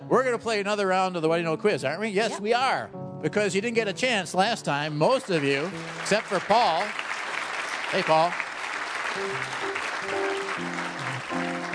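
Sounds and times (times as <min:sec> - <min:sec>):
speech: 0:00.1 - 0:07.1, 0:07.9 - 0:08.5, 0:09.2 - 0:10.7
audience clapping: 0:04.7 - 0:11.7
voices calling out or cheering: 0:05.4 - 0:11.7.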